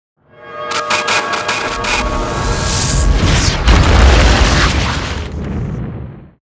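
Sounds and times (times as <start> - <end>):
meteor: 1.6 - 6.4.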